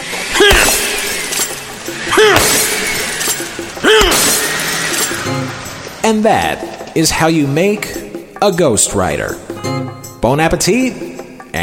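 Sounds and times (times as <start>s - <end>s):
sledgehammer smashing a mixed concoction with glassy shattering breakage: 0.4s - 5.3s
speech: 6.1s - 11.1s.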